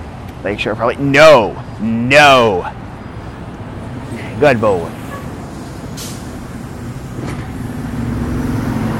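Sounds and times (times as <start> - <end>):
large bus engine rumbling at a crosswalk: 0.0 - 8.9
speech: 0.4 - 2.8, 4.1 - 5.0
brief hiss: 6.0 - 6.3.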